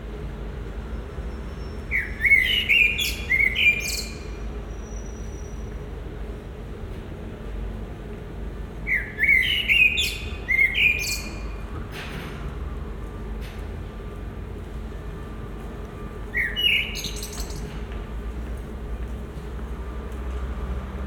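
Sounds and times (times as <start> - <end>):
low background hum: 0.0 - 21.0
common blackbird singing in Marolles, Brussels, Belgium: 1.6 - 4.4, 8.9 - 11.6, 16.3 - 17.7.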